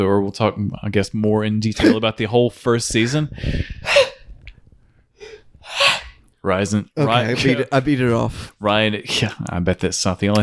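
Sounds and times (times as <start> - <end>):
speech: 0.0 - 4.1, 6.4 - 10.4
person sneezing: 3.8 - 4.3, 5.6 - 6.2.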